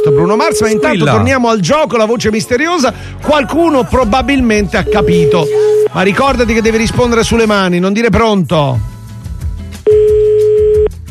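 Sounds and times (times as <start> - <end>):
telephone ringback tone on a call: 0.0 - 1.2, 9.9 - 10.9
speech: 0.2 - 8.9.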